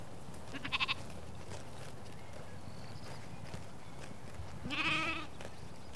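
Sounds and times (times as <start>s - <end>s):
sheep on pasture bleating: 0.5s - 1.0s, 4.7s - 5.3s.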